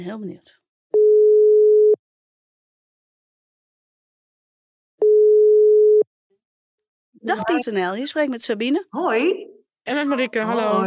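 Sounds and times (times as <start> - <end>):
speech: 0.0 - 0.6, 7.2 - 10.8
telephone ringback tone on an outgoing call: 1.0 - 2.0, 5.0 - 6.0.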